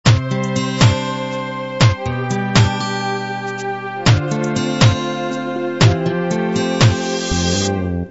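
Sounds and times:
sixteen-beat ballad drum intro: 0.1 - 1.0, 1.8 - 2.9, 4.1 - 5.2, 5.8 - 6.2, 6.8 - 7.5.

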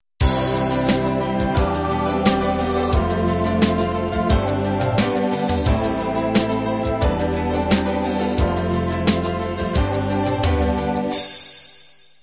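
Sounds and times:
cinematic ballad music: 0.2 - 11.3.

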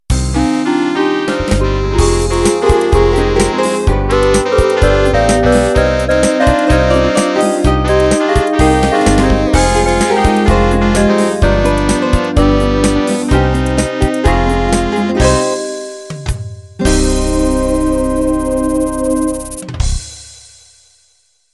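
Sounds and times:
beguine music ending: 0.1 - 20.2.

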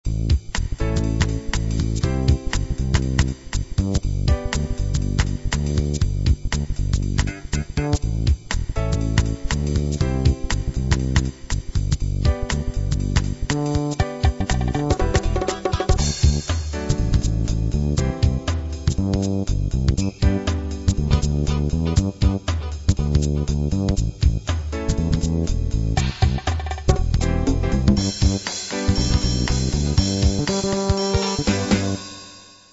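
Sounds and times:
acid jazz music: 0.1 - 32.4.

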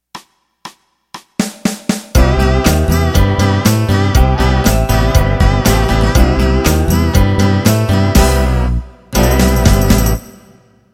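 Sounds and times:
modern country music intro: 2.2 - 10.3.

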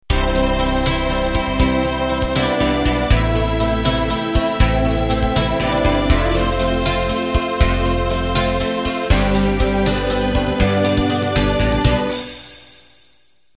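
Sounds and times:
slow rock intro: 0.1 - 12.9.

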